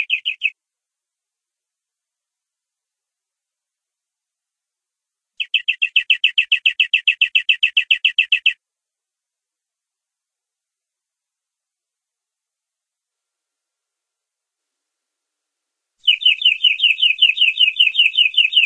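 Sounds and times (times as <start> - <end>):
domestic canary giving long rolling song: 0.0 - 0.6, 5.4 - 8.6, 16.0 - 18.6.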